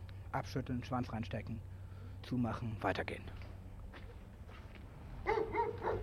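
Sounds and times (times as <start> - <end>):
low steady hum: 0.0 - 6.0
speech: 0.3 - 3.4, 5.2 - 6.0
dog barking: 5.2 - 6.0.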